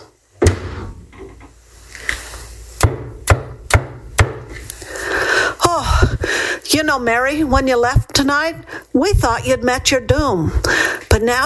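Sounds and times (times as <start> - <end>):
wooden door thudding shut: 0.4 - 1.3
low rumble: 2.6 - 11.4
sharp knocks or clunks: 2.8 - 4.5
speech: 6.8 - 11.4.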